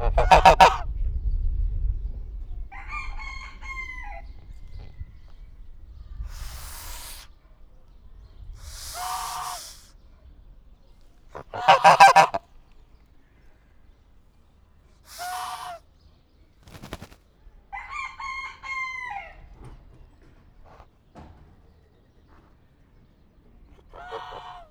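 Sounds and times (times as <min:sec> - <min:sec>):
domestic goose honking in a zoo farmyard: 0:00.0 - 0:00.8, 0:08.7 - 0:09.9, 0:11.4 - 0:12.4, 0:15.1 - 0:15.8, 0:23.9 - 0:24.6
wind rumble: 0:00.0 - 0:12.7
domestic goose hissing in a zoo farmyard: 0:06.1 - 0:07.4, 0:08.6 - 0:10.0, 0:11.4 - 0:12.4, 0:15.0 - 0:15.8, 0:23.9 - 0:24.6.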